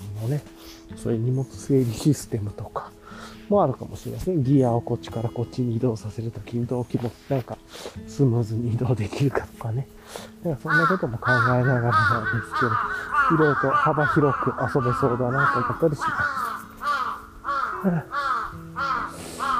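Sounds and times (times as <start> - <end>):
speech: 0.2 - 16.4, 17.8 - 18.2
crows cawing: 10.6 - 19.5.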